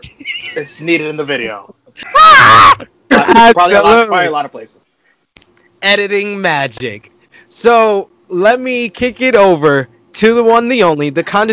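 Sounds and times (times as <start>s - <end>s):
speech: 0.6s - 4.9s, 5.8s - 11.5s
man screaming: 2.1s - 2.8s.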